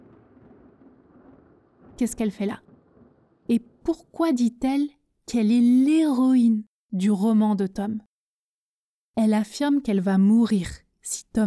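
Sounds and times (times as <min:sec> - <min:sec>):
rain hissing: 0:00.0 - 0:03.8
thunder rumbling during a stormy night: 0:00.0 - 0:04.3
speech: 0:02.0 - 0:02.7, 0:03.5 - 0:08.1, 0:09.2 - 0:11.4.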